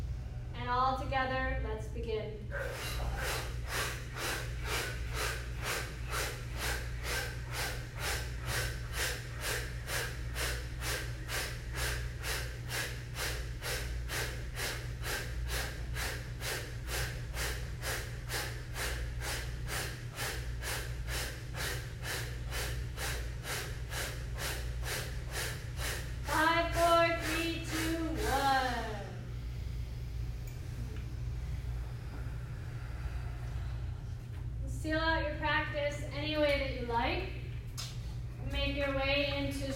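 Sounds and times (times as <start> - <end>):
low hum: 0.0 - 39.7
speech: 0.7 - 4.3
forceful exhales through the mouth in a yoga breathing drill: 2.5 - 34.1.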